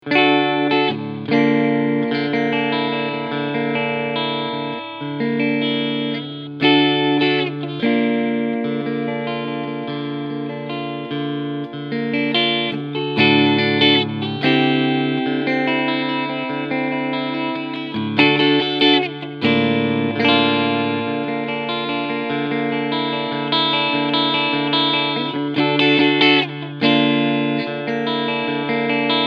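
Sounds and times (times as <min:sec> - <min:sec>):
Fender Vintera 50s Telecaster clean sound chords on both pickups: 0:00.0 - 0:29.2.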